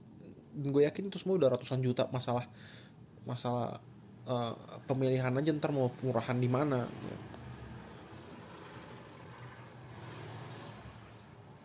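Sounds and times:
speech: 0.6s - 7.4s
motorcycle speeding past in narrow alley: 6.5s - 11.6s.

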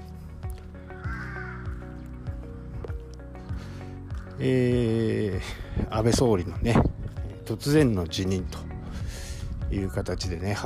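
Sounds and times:
black kite calling with a wavering whistled cry: 0.8s - 2.8s
speech: 4.4s - 6.9s, 7.5s - 8.7s, 9.7s - 10.6s.

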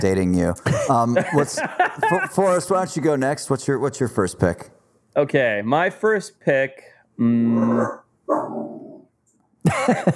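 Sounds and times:
speech: 0.0s - 8.4s, 9.7s - 10.1s
laughter: 0.6s - 2.8s
dog barking excitedly: 7.6s - 8.6s.

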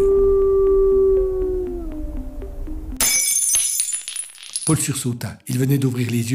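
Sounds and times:
huge wolf howling: 0.0s - 2.9s
speech: 4.7s - 6.3s.

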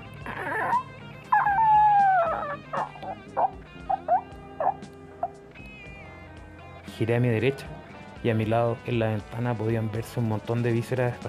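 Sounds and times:
animal strangled squealing cry with whine and choked yelps: 0.2s - 5.4s
speech: 7.0s - 11.2s.

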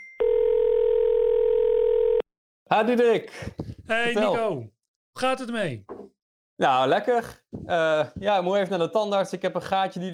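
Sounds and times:
telephone dial tone as a call is placed: 0.2s - 2.3s
speech: 2.7s - 5.9s, 6.6s - 10.1s.

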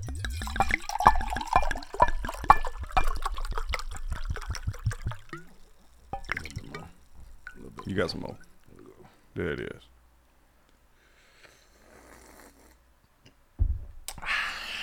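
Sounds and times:
liquor glugging into a glass: 0.0s - 9.0s
speech: 8.0s - 8.5s, 9.4s - 9.9s.

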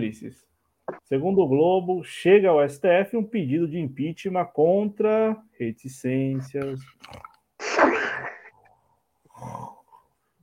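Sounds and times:
speech: 0.0s - 0.5s, 1.1s - 7.3s
loud rough snoring: 9.3s - 10.0s.

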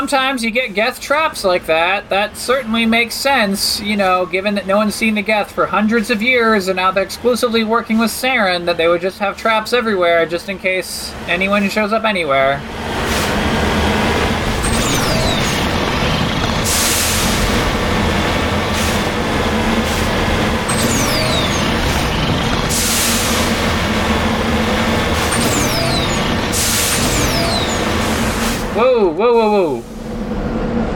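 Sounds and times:
speech: 0.0s - 13.1s, 28.8s - 29.8s
video game armored vehicle engine and rolling rumble: 0.8s - 30.9s
short descending whines: 14.2s - 17.8s, 20.6s - 29.5s
bright bursts: 14.3s - 18.0s, 20.6s - 28.7s.

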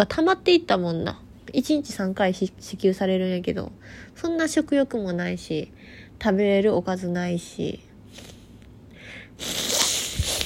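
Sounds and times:
speech: 0.0s - 8.4s, 9.4s - 9.6s
person with a runny nose sniffling in a quarantine hotel: 8.1s - 10.4s.

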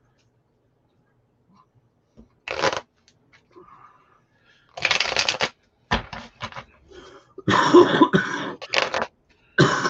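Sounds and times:
deck of cards being riffle shuffled: 2.4s - 2.9s, 4.7s - 6.7s, 8.6s - 9.1s
person coughing softly: 7.4s - 8.9s, 9.6s - 9.8s.

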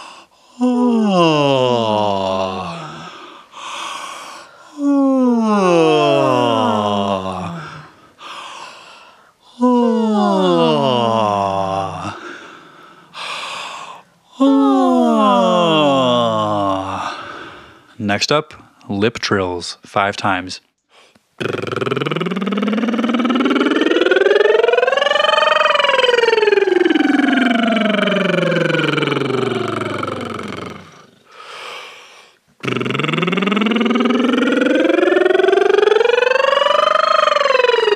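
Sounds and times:
person yawning deliberately: 0.0s - 4.0s, 4.6s - 8.4s, 9.5s - 17.8s, 21.4s - 31.6s, 32.6s - 37.9s
breathy inhales: 2.8s - 4.8s, 7.6s - 9.4s, 12.1s - 14.1s, 17.0s - 17.9s, 30.8s - 32.4s
speech: 18.2s - 20.7s, 21.4s - 21.6s.

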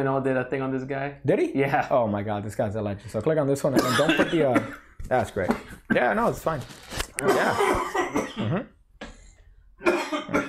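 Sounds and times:
speech: 0.0s - 8.7s
coughing into a microphone: 3.8s - 6.3s, 7.2s - 8.8s, 9.8s - 10.4s.

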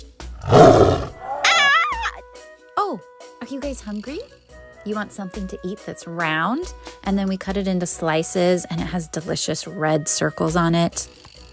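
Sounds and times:
speech: 0.0s - 0.8s, 3.8s - 11.3s
Bengal tiger roaring: 0.3s - 1.8s.

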